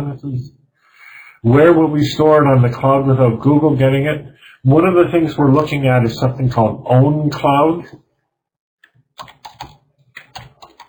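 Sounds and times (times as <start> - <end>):
speech: 0.1 - 0.6, 1.4 - 8.0
typing on a computer keyboard: 8.8 - 10.8.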